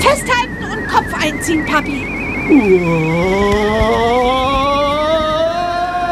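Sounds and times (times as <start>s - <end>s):
speech: 0.1s - 4.5s
car engine accelerating in a road tunnel: 2.1s - 5.9s.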